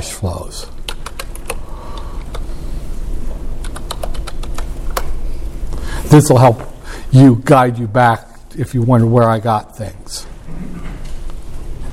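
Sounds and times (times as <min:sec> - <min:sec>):
speech: 0:00.2 - 0:00.8, 0:06.1 - 0:10.3
typing on a computer keyboard: 0:00.9 - 0:01.6, 0:03.6 - 0:05.1.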